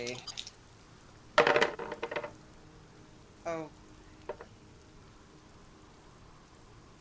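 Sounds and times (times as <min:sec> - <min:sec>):
speech: 0:00.0 - 0:00.4, 0:03.5 - 0:04.4
dice rolling in a dice tray during a tabletop role-playing game: 0:01.4 - 0:02.3.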